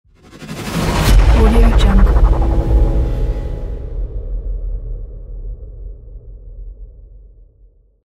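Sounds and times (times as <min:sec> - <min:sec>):
whoosh hit: 0:00.4 - 0:04.4.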